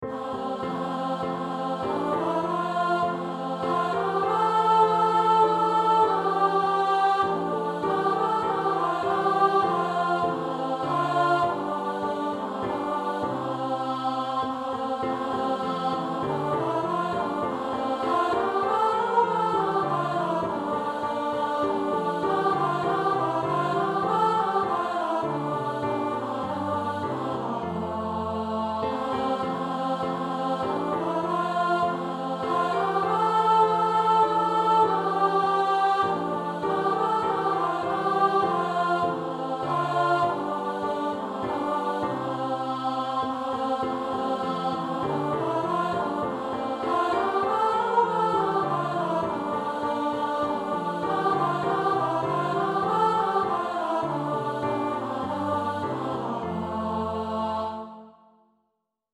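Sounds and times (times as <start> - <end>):
alto voice singing a Christmas carol: 0.0 - 58.2.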